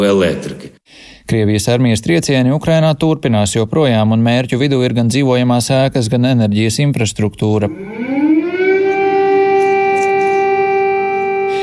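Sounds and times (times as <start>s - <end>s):
speech: 0.0s - 8.1s
air raid siren wailing: 7.7s - 11.6s.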